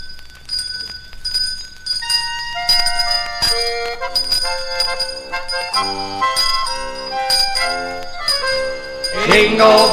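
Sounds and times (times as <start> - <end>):
bright jingling sleigh bells: 0.0 - 9.9
bouncy instrumental polka music: 2.3 - 9.9.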